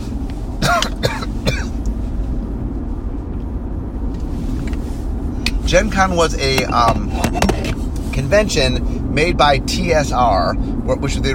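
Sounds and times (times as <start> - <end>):
steady low rumble: 0.0 - 9.6
person coughing harshly: 0.6 - 1.8
speech: 5.7 - 7.5, 8.2 - 11.3.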